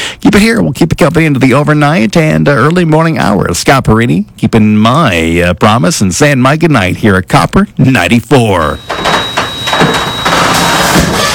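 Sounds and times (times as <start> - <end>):
speech: 0.3 - 9.1, 9.8 - 10.1
loud rattling garage door grinding open: 8.8 - 11.3.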